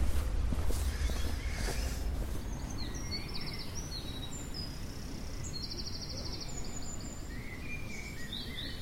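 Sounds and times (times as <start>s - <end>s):
steady low outdoor rumble: 0.0s - 3.4s
nocturnal birds calling at a campsite: 0.6s - 8.7s.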